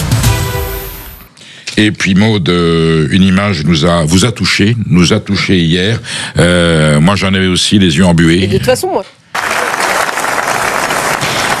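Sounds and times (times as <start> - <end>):
speech: 1.8 - 9.2
large crowd giving a standing ovation in a festival theatre: 9.3 - 11.5.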